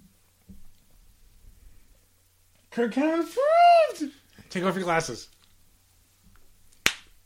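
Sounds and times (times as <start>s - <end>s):
speech: 2.8s - 5.4s
sharp slap on skin: 6.8s - 7.1s.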